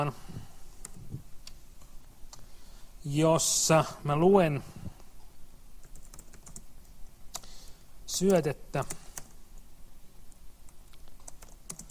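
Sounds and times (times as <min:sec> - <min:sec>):
speech: 0:00.0 - 0:00.3, 0:03.0 - 0:04.8, 0:08.2 - 0:09.0
computer keyboard typing as C code is typed: 0:05.8 - 0:06.7, 0:08.1 - 0:09.4, 0:10.7 - 0:11.8.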